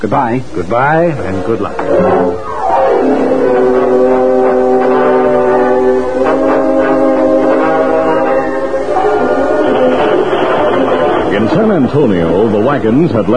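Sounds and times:
speech: 0:00.0 - 0:04.1, 0:11.3 - 0:13.3
moving train rumbling: 0:01.1 - 0:13.3
train horn blowing a long chord: 0:01.6 - 0:11.5.

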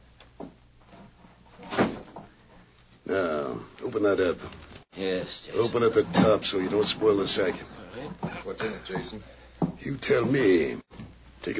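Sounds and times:
door swinging shut: 0:01.6 - 0:02.3, 0:05.8 - 0:08.4
speech: 0:03.1 - 0:10.8.

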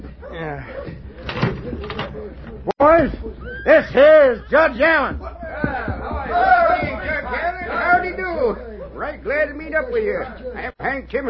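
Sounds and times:
indistinct voices talking: 0:00.0 - 0:11.2
speech: 0:00.4 - 0:01.0, 0:02.2 - 0:05.3, 0:08.5 - 0:11.2
door opening with a short clunk and rattle: 0:01.2 - 0:02.6.

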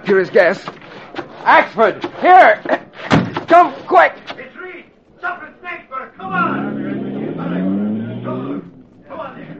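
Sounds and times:
speech: 0:00.1 - 0:00.8, 0:01.4 - 0:04.2
car engine revving and pulling away: 0:06.2 - 0:09.5.

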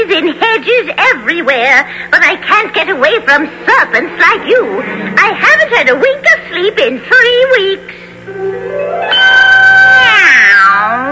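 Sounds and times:
speech: 0:00.2 - 0:09.6
long drawn-out cat meow: 0:09.8 - 0:11.1.

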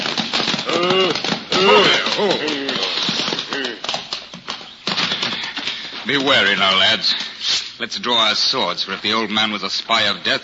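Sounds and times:
horses' hooves galloping: 0:00.0 - 0:07.4
speech: 0:02.2 - 0:02.6, 0:06.1 - 0:10.4.

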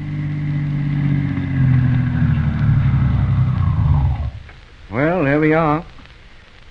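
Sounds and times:
doctor's car engine humming as the car draws up in front of a house: 0:00.0 - 0:04.8
speech: 0:05.4 - 0:05.9.

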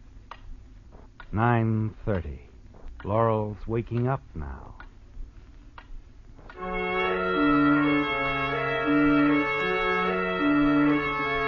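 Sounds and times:
low hum: 0:00.0 - 0:11.4
clock ticking: 0:00.3 - 0:05.0
speech: 0:01.3 - 0:04.8.

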